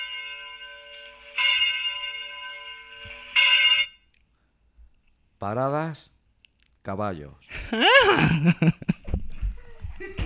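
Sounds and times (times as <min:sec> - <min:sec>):
church bells ringing: 0:00.0 - 0:04.1
speech: 0:05.4 - 0:06.1, 0:06.8 - 0:08.9
laughter: 0:07.5 - 0:10.2.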